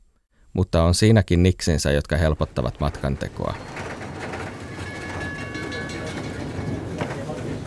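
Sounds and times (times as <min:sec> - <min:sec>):
speech: 0:00.6 - 0:03.8
passenger train rolling along the rails: 0:02.5 - 0:07.6
thin metallic whine of train: 0:03.4 - 0:07.3.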